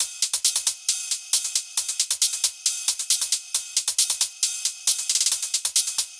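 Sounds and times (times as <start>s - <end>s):
hi-hat drum: 0.0s - 6.1s.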